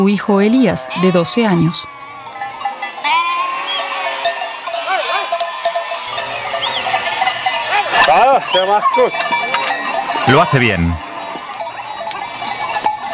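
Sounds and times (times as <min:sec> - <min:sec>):
speech: 0:00.0 - 0:02.0, 0:08.0 - 0:09.4, 0:10.3 - 0:11.1
many small sheep bells clanking and jingling: 0:00.0 - 0:13.1
flock of sheep bleating: 0:00.7 - 0:04.3.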